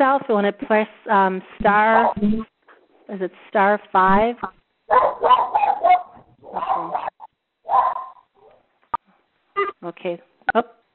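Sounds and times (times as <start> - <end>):
speech: 0.0 - 2.5, 3.1 - 5.4, 9.8 - 10.8
dog barking: 4.9 - 8.6.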